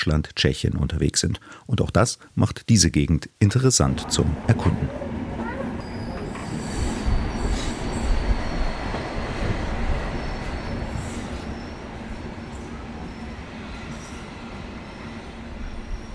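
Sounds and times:
speech: 0.0s - 5.0s
passenger train rolling along the tracks: 3.9s - 16.1s
faint high-pitched squeals from passenger train wheels: 5.0s - 16.1s.

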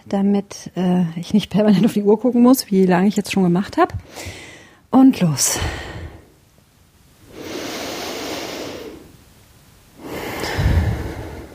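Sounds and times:
speech: 0.1s - 5.9s
slow deep breathing during a breathing meditation: 4.0s - 4.9s, 7.3s - 9.2s, 10.0s - 11.5s.

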